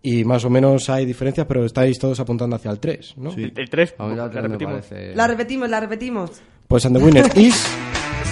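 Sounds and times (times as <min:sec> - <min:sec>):
speech: 0:00.0 - 0:08.0
radio station ident jingle: 0:06.8 - 0:08.2
laughter: 0:07.0 - 0:07.7.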